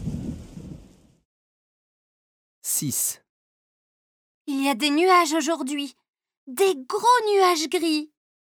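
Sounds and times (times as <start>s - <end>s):
deep low thunder rumbling in a thunderstorm: 0.0s - 1.2s
speech: 2.7s - 3.2s, 4.5s - 8.1s.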